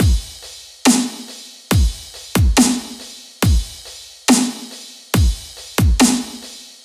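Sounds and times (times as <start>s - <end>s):
cymbal: 0.0s - 6.8s.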